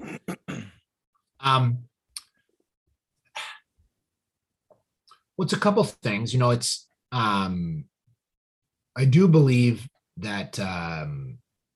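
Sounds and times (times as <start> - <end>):
person clearing throat: 0.0 - 0.8
person coughing: 0.0 - 0.8
speech: 1.4 - 1.9, 5.4 - 7.9, 9.0 - 11.4.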